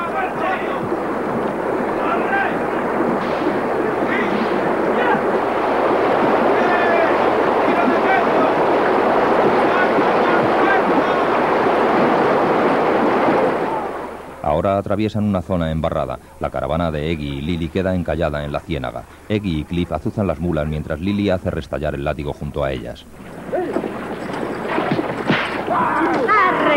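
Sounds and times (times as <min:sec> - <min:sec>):
rushing river current with a strong impetuous flow: 0:00.0 - 0:14.5, 0:23.0 - 0:26.7
speech: 0:14.6 - 0:23.4.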